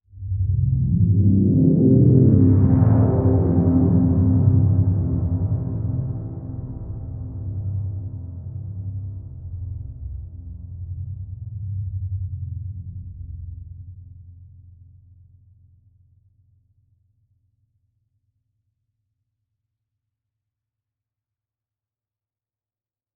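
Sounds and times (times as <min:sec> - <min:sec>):
psytrance synth pad: 0:00.1 - 0:13.5.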